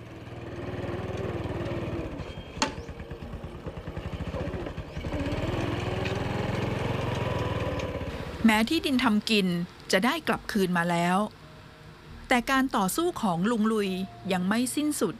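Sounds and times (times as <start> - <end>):
tractor engine chugging: 0.0 - 8.2
speech: 8.5 - 11.4, 12.3 - 15.1.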